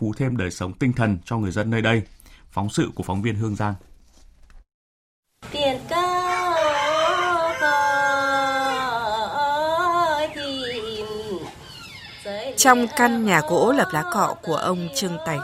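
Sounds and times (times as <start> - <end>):
speech: 0.0 - 3.9, 12.6 - 15.4
Dao women singing a traditional pao dung folk song: 5.4 - 11.6, 12.2 - 15.4.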